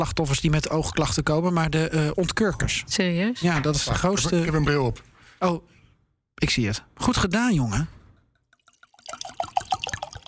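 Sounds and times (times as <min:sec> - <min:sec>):
speech: 0:00.0 - 0:05.8, 0:06.4 - 0:08.0
champagne being poured into a glass: 0:08.3 - 0:10.2.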